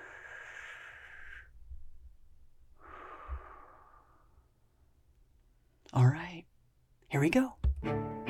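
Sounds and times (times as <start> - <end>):
deep breath taken to relax: 0.0 - 1.8, 2.7 - 4.7
speech: 5.9 - 6.4, 7.2 - 8.0.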